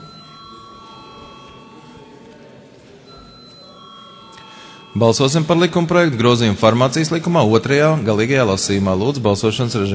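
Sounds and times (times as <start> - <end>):
parliament electronic voting bell ringing: 0.0 - 7.2
low murmur of room noise: 0.0 - 9.9
speech: 5.0 - 9.9.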